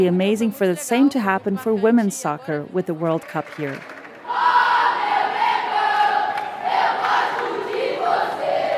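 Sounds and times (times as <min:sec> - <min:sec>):
speech: 0:00.0 - 0:04.5
stadium crowd roaring and chanting at a women's soccer match: 0:03.8 - 0:08.7.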